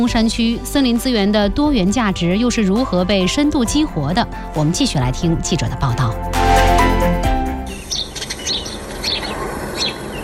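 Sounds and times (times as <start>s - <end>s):
speech: 0.0s - 6.4s
birds chirping in a forest valley: 7.6s - 10.2s.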